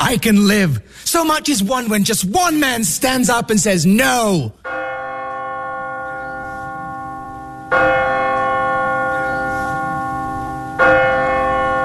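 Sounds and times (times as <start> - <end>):
speech: 0.1 - 4.8
church bell ringing: 4.1 - 11.8.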